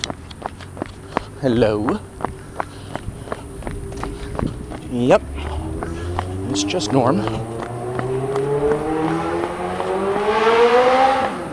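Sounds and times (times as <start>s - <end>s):
loud motorcycle engine revving: 0.0s - 11.5s
speech: 1.4s - 2.4s, 4.9s - 5.5s, 6.5s - 7.5s.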